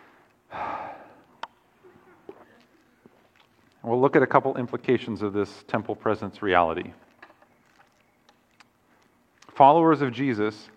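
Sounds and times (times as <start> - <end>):
deep breath: 0.0 - 1.3
speech: 3.8 - 7.1, 9.6 - 10.7.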